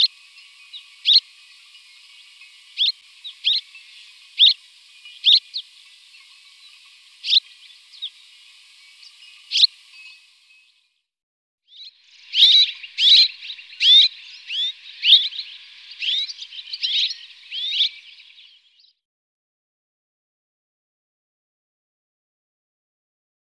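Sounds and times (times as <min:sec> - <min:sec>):
Red-rumped swallow chirping and twittering: 0:00.0 - 0:10.7, 0:12.0 - 0:18.7.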